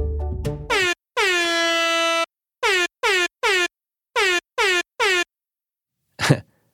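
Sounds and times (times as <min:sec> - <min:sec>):
loud air horn blasts spelling a word in Morse code: 0:00.7 - 0:05.3.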